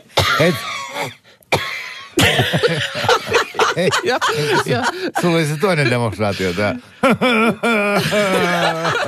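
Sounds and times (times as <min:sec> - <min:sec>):
person coughing harshly in raspy strained fits: 0:00.0 - 0:03.0
speech: 0:00.4 - 0:01.4, 0:02.3 - 0:09.0
laughter: 0:02.2 - 0:09.0.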